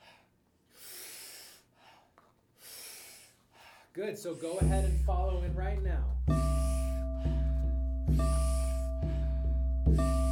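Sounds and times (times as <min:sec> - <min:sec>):
forceful inhales through the mouth in a breathing exercise: 0:00.0 - 0:05.2, 0:06.5 - 0:09.5
speech: 0:04.0 - 0:06.4.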